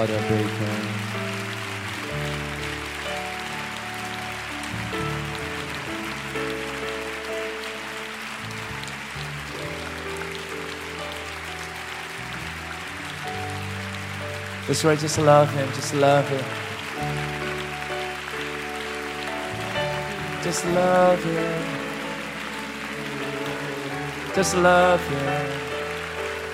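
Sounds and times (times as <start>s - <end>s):
speech: 0.0s - 1.2s, 14.7s - 17.1s, 20.4s - 21.8s, 24.4s - 25.6s
audience clapping during a prayer service: 0.0s - 26.5s
sustained keyboard chords: 0.0s - 26.5s.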